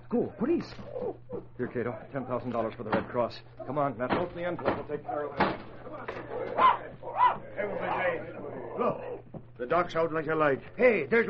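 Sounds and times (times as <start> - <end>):
faint steady hum: 0.0 - 11.2
speech: 0.1 - 11.2
dog growling: 6.3 - 9.3.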